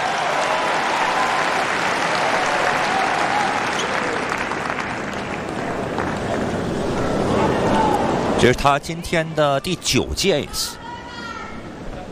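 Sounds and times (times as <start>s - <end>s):
tennis crowd applause praising a fine shot: 0.0s - 8.4s
speech: 8.4s - 10.8s.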